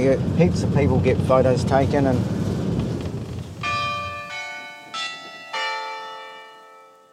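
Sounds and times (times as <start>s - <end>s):
speech: 0.0s - 2.4s
low outdoor rumble: 0.0s - 4.9s
town clock ringing chimes: 3.6s - 7.1s.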